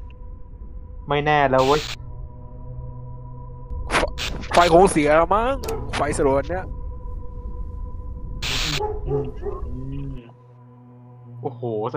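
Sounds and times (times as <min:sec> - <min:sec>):
speech: 0:01.1 - 0:02.0, 0:04.6 - 0:06.8, 0:09.0 - 0:10.3, 0:11.4 - 0:11.9
dog howling: 0:05.6 - 0:06.0, 0:08.8 - 0:10.2.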